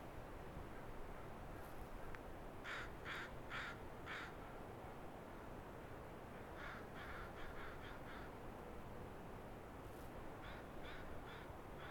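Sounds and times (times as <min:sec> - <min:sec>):
continuous low background noise: 0:00.0 - 0:11.8
crow calling harsh caws at dawn: 0:02.6 - 0:04.4, 0:06.6 - 0:08.3, 0:10.4 - 0:11.8.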